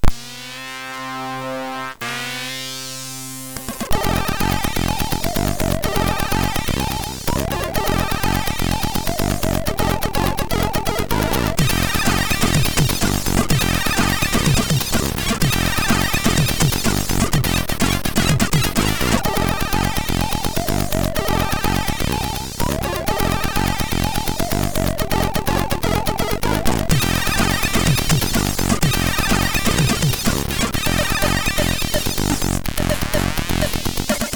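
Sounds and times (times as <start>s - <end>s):
hardcore techno on MOS6581R3 SID chip: 0.0s - 34.3s.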